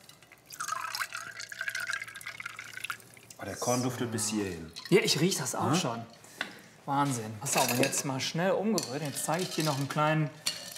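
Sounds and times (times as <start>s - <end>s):
soda water pouring into a glass: 0.0s - 3.4s
speech: 3.4s - 6.2s, 6.9s - 10.4s.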